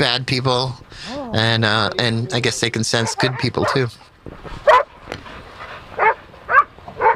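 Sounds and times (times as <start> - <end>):
speech: 0.0 - 4.7
faint open-air background: 0.0 - 7.1
dogs being walked barking and yipping outdoors: 1.9 - 7.1.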